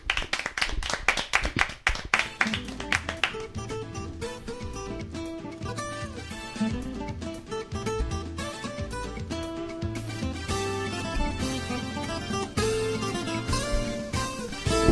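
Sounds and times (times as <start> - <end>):
applause: 0.0 - 3.6
instrumental music track: 2.2 - 14.8.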